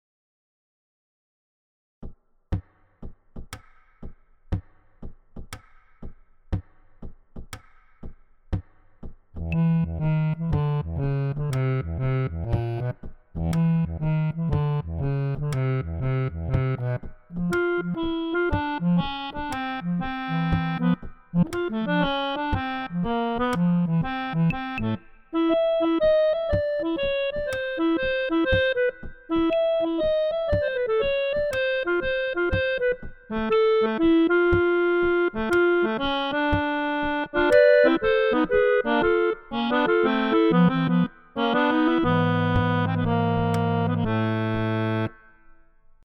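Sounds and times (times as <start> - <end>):
baritone bayan accordion: 9.5 - 45.2.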